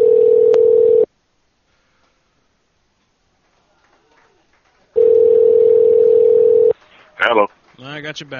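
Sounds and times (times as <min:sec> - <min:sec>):
telephone dial tone: 0:00.0 - 0:01.1, 0:05.0 - 0:06.7
speech: 0:08.0 - 0:08.3.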